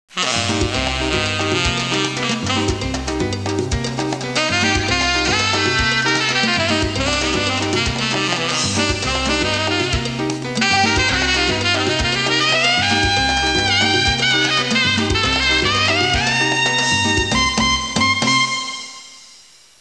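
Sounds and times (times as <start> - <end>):
latin music: 0.1 - 19.5.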